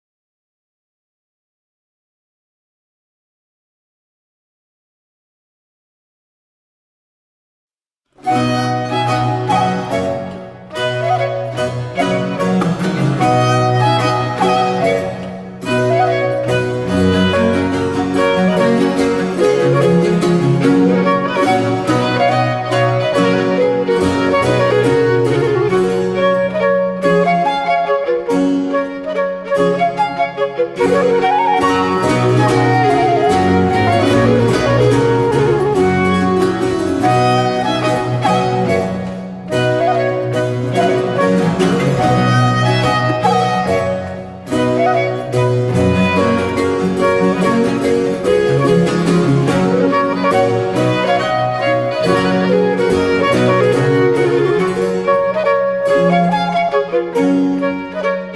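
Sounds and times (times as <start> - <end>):
basso continuo: 8.2 - 58.3
flute: 8.2 - 58.3
violin: 8.2 - 58.3.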